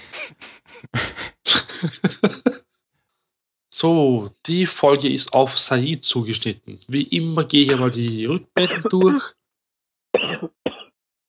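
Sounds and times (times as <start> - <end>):
laughter: 1.0 - 2.6, 7.6 - 8.3
speech: 1.8 - 2.5, 3.8 - 9.4
person coughing into the microphone: 7.7 - 9.3, 10.2 - 10.9.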